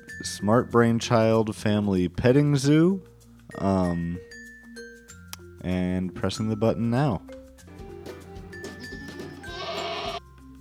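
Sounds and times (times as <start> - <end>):
speech: 0.2 - 4.3, 5.6 - 7.4
baby goats bleating at a petting zoo: 8.4 - 10.2.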